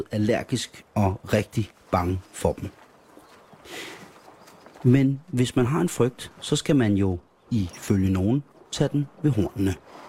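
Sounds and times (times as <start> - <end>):
speech: 0.0 - 2.8, 4.8 - 10.0
horse hooves clip-clopping on a hard surface: 1.8 - 6.6.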